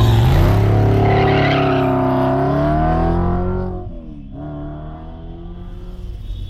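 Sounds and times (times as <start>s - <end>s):
car skidding on a freeway: 0.0s - 3.1s
car engine roaring at speed on a freeway: 0.0s - 6.4s.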